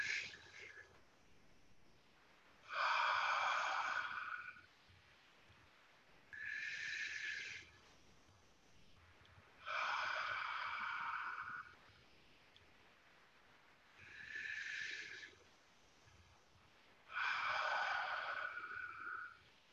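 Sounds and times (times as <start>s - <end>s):
person breathing in and out deeply during a guided breathing exercise: 0.0s - 1.0s, 2.6s - 4.7s, 6.3s - 9.0s, 9.6s - 12.2s, 14.0s - 16.4s, 17.0s - 19.4s.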